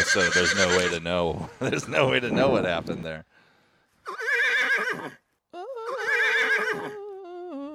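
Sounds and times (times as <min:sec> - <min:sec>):
horse whinnying: 0:00.0 - 0:01.1, 0:04.0 - 0:05.2, 0:05.8 - 0:07.1
speech: 0:00.1 - 0:03.3, 0:04.9 - 0:05.2.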